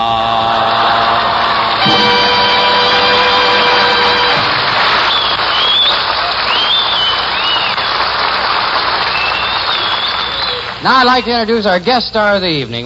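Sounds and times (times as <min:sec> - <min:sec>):
large crowd cheering at a race finish: 0:00.1 - 0:11.5
steady horn-like tone: 0:00.3 - 0:06.1
scattered whistles: 0:01.8 - 0:08.3, 0:08.9 - 0:10.8
speech: 0:10.9 - 0:12.8.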